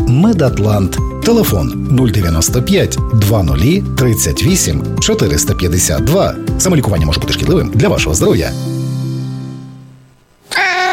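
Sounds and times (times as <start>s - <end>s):
speech: 0.2s - 8.7s
cat meowing entering a new apartment: 10.4s - 10.9s.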